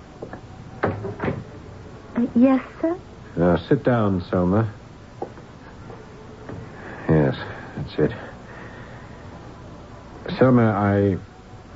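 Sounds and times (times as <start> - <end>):
door swinging shut and latching: 0.8 - 1.5
speech: 2.2 - 4.8, 8.0 - 8.3, 10.4 - 11.3.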